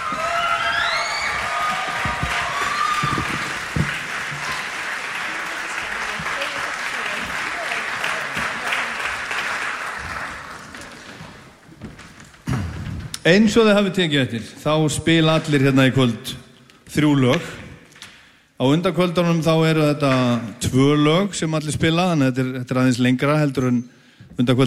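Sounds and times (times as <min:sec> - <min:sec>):
audience applause at a music evening: 0:00.0 - 0:11.6
speech: 0:13.3 - 0:17.6, 0:18.6 - 0:24.6.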